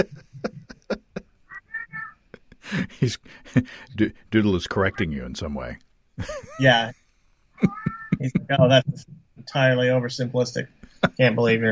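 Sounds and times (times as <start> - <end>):
speech: 0.0 - 0.5, 2.7 - 7.0, 7.6 - 11.6
laughter: 0.0 - 1.2, 2.4 - 4.8, 6.2 - 6.9, 7.6 - 8.8, 10.8 - 11.6
cat meowing: 7.6 - 8.4.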